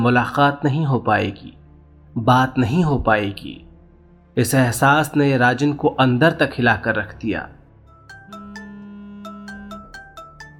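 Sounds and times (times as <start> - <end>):
speech: 0.0 - 1.6, 2.2 - 3.6, 4.4 - 7.6
melodic phone ringtone with chiming notes: 7.9 - 10.5
sustained low tone: 8.1 - 10.5.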